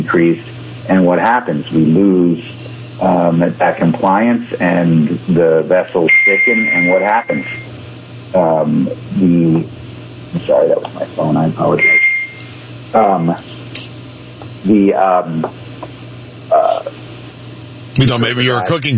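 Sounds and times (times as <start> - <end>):
speech: 0.1 - 7.7, 8.3 - 12.0, 12.9 - 13.5, 14.6 - 15.6, 18.0 - 18.9
short electronic alert beep from a new computer: 6.1 - 7.6, 11.8 - 12.4.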